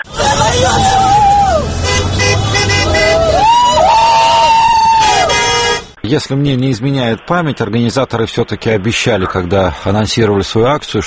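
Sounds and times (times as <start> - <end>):
car horns tooting: 0.0 - 3.8, 4.9 - 6.0
voices babbling: 0.0 - 4.0
outdoor crowd cheering at a car rally: 0.0 - 5.9
traffic: 0.0 - 8.3
speech: 6.1 - 11.0.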